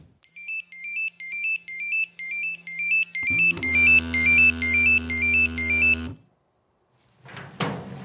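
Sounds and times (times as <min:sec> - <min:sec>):
fire brigade pager alarm beeping: 0:00.3 - 0:06.2.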